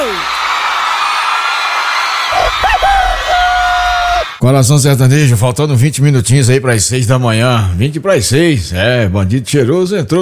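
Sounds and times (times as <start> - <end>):
large crowd cheering: 0.0 - 4.4
shouts and whoops: 0.0 - 4.4
speech: 4.4 - 10.2.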